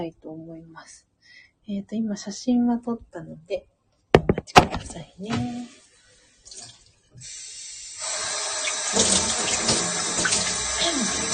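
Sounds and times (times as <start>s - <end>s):
speech: 0.0s - 3.7s, 4.4s - 5.8s, 8.9s - 9.8s
soft knocks of a vessel being washed: 4.2s - 5.5s
tap water running into a sink: 6.4s - 11.3s.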